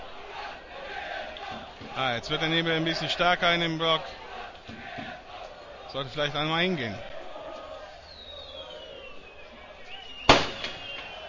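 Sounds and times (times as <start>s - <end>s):
football stadium crowd during a match: 0.0s - 11.2s
speech: 2.0s - 5.0s, 5.9s - 7.1s
firecracker bang from a fan block in a football stadium: 10.3s - 11.2s.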